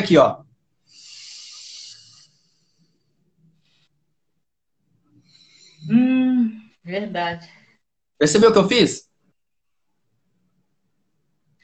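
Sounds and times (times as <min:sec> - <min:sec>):
speech: 0:00.0 - 0:00.4, 0:05.8 - 0:07.6, 0:08.2 - 0:09.1
person breathing in one side, out the other: 0:00.8 - 0:03.4, 0:05.2 - 0:06.0.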